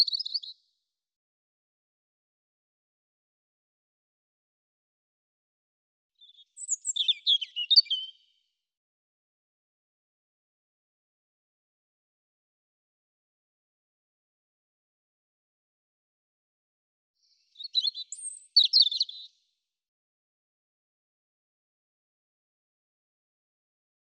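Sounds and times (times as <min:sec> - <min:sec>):
European robin song: 0:00.0 - 0:00.8, 0:06.2 - 0:08.8, 0:17.2 - 0:19.6.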